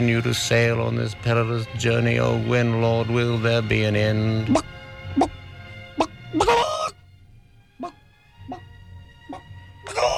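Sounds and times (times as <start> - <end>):
speech: 0.0 - 4.8
chicken squawk: 4.5 - 5.4, 6.0 - 7.0, 7.8 - 8.7, 9.3 - 10.1
chicken clucking: 6.0 - 6.9.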